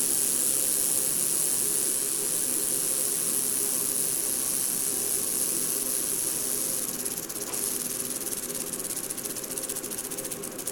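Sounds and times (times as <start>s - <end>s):
sidewinder Crotalus cerastes rattle buzzing: 0.0s - 10.7s.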